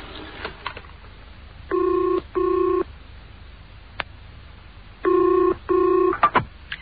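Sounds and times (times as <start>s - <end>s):
telephone line ringing: 1.7s - 2.9s, 5.1s - 6.2s.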